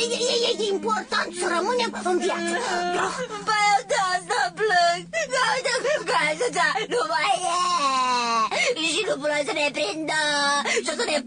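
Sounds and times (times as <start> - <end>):
speech: 0.0 - 11.2
person crying and whimpering in a high quavering voice: 0.3 - 4.4, 5.1 - 8.8.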